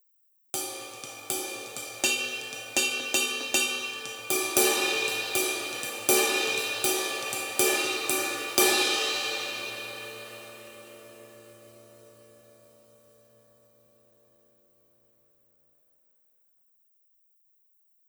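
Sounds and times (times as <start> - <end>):
19 inch thin vintage sizzle ride cymbal with sizzle chain on acoustic drum kit: 0.6 - 12.8.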